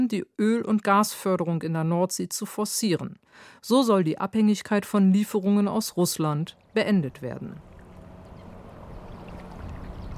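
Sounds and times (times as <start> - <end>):
speech: 0.1 - 7.7
harbour water lapping and sloshing around a gently rocking boat: 6.3 - 10.1.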